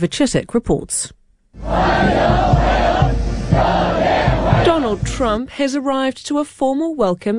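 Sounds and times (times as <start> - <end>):
speech: 0.0 - 3.8, 4.6 - 7.3
large crowd in Beijing China cheering and shouting in unison: 1.6 - 5.1.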